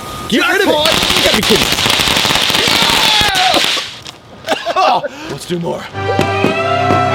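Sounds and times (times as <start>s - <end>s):
speech: 0.3s - 1.8s, 5.0s - 7.0s
string of small Black Cat firecrackers popping and crackling: 0.7s - 4.2s
laughter: 4.4s - 5.3s.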